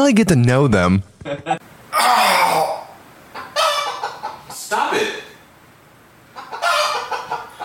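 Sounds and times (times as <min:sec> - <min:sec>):
speech: 0:00.0 - 0:02.7
chicken clucking and squawking: 0:03.3 - 0:04.7, 0:06.3 - 0:07.6.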